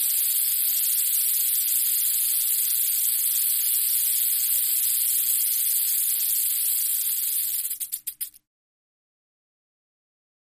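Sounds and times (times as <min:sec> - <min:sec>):
rattlesnake rattling: 0:00.0 - 0:08.4.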